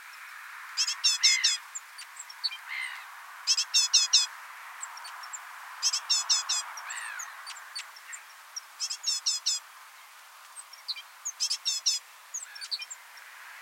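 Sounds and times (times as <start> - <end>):
great tit calls: 0.8 - 9.6, 10.5 - 13.0.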